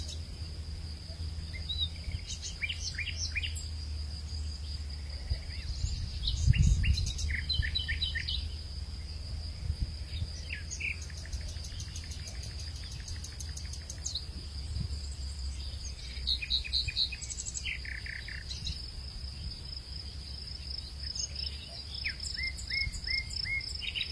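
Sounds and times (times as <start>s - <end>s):
birds singing in a flower field: 0.0s - 9.2s, 10.0s - 24.1s
light breeze in a flower field: 0.0s - 24.1s.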